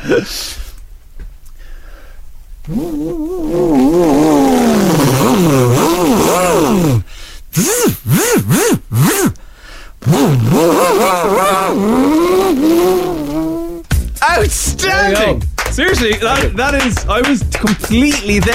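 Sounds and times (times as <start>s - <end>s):
speech: 0.0s - 0.6s, 2.7s - 4.0s, 14.7s - 18.5s
voice imitating a Formula 1 race car: 2.7s - 9.4s, 10.0s - 15.4s.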